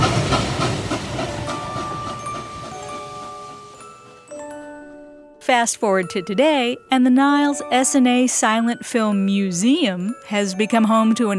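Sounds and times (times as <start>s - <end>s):
train wheels clacking over rail joints: 0.0s - 4.0s
train rumbling along the tracks: 0.0s - 4.3s
speech: 5.5s - 11.3s.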